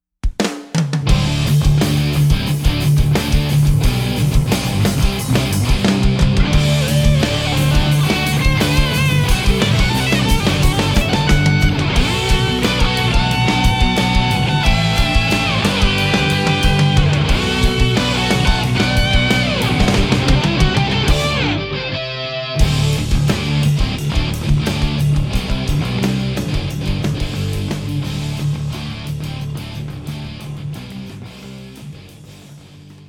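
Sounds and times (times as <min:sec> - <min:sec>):
distorted electric guitar through a modelling amplifier: 0:01.1 - 0:33.0.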